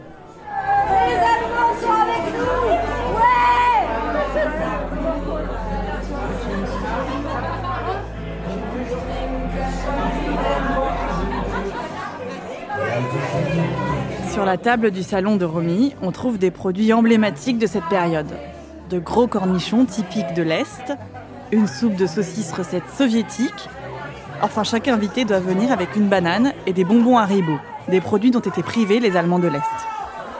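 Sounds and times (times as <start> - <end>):
low rumble of music: 0.0 - 30.3
party guests chattering at a house party: 0.0 - 30.3
laughter: 0.6 - 14.2, 19.8 - 30.3
speech: 14.5 - 23.8, 24.4 - 29.8.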